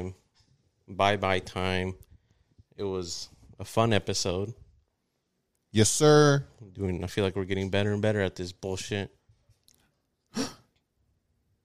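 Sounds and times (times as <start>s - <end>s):
speech: 0.9s - 2.1s, 2.8s - 4.6s, 5.7s - 9.2s, 10.3s - 10.6s
person gasping: 10.4s - 10.6s.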